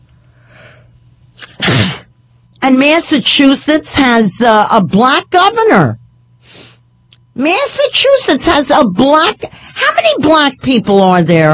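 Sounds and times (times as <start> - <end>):
person sneezing: 1.4 - 2.1
speech: 2.7 - 6.0, 7.4 - 11.5.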